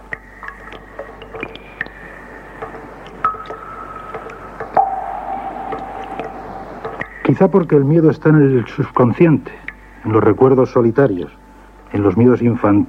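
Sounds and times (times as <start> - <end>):
water dripping in single drops: 0.0 - 10.0
faint hiss: 0.0 - 12.8
speech: 7.3 - 12.8.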